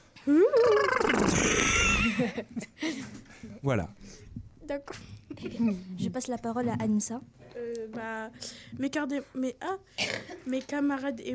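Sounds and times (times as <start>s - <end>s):
person on a radio program imitating a horse's whinny: 0.2s - 2.1s
speech: 0.2s - 11.3s.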